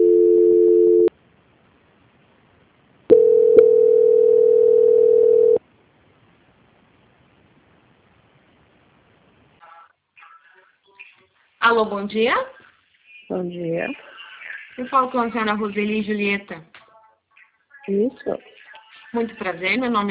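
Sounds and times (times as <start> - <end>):
telephone line tones during a call transfer: 0.0 - 1.1, 3.1 - 5.6
speech: 11.8 - 12.6, 13.3 - 14.1, 14.8 - 16.7, 17.8 - 20.0.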